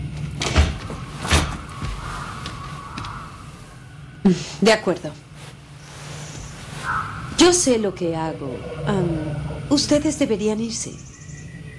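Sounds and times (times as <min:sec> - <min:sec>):
door shutting thuds: 0:00.0 - 0:03.8
faint steady hum: 0:00.0 - 0:11.7
speech: 0:04.2 - 0:05.2, 0:07.4 - 0:11.1.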